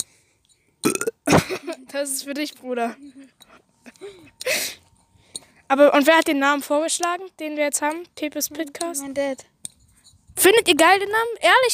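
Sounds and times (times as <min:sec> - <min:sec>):
person burping into the microphone: 0:00.8 - 0:01.6
speech: 0:01.9 - 0:04.8, 0:05.7 - 0:09.5, 0:10.4 - 0:11.7.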